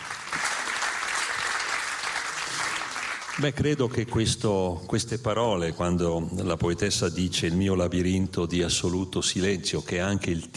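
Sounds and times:
audience applause after a poetry reading: 0.0s - 3.6s
speech: 3.4s - 10.5s.

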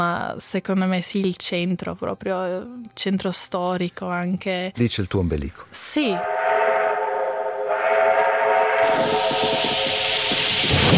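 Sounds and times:
speech: 0.0s - 6.4s
steam train whistling: 6.0s - 10.9s.

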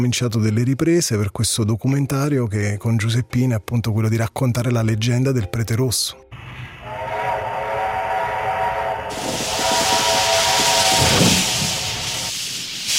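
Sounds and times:
speech: 0.0s - 6.4s
steam train hissing: 6.4s - 12.9s.

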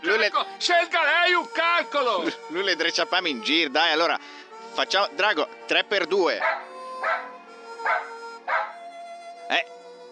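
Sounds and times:
speech: 0.2s - 7.1s, 9.5s - 9.8s
dog barking: 6.4s - 8.8s.

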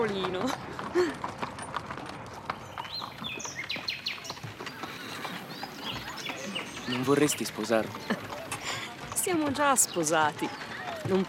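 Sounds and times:
speech: 0.0s - 1.3s, 6.9s - 8.3s, 9.3s - 11.2s
horse hooves clip-clopping as a horse is driven: 0.0s - 11.2s
birds chirping and tweeting: 2.4s - 11.2s.

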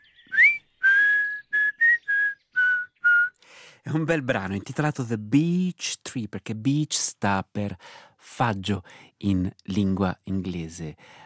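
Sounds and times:
man whistling a slow melody: 0.0s - 3.4s
speech: 3.8s - 11.2s.

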